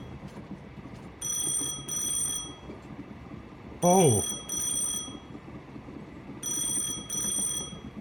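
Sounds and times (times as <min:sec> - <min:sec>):
low hum: 0:00.0 - 0:07.9
old-fashioned telephone bell ringing: 0:01.2 - 0:02.8, 0:03.8 - 0:05.4, 0:06.4 - 0:07.9
speech: 0:03.8 - 0:04.5.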